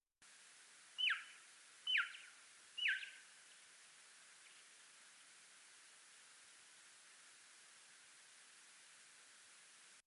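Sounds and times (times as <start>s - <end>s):
Townsend's bats social calls: 1.0s - 3.1s.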